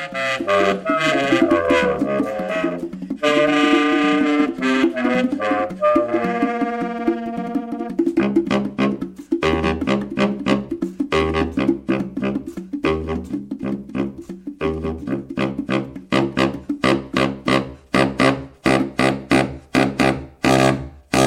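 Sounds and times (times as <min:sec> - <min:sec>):
saxophone honking and screeching: 0:00.0 - 0:10.0
sharp rhythmic stabs of jazz accompaniment: 0:00.0 - 0:21.2.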